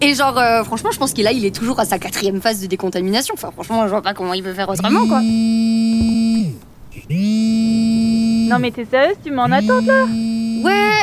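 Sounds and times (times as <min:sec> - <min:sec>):
speech: 0:00.0 - 0:11.0
phone alarm buzzing: 0:04.8 - 0:08.7, 0:09.4 - 0:11.0.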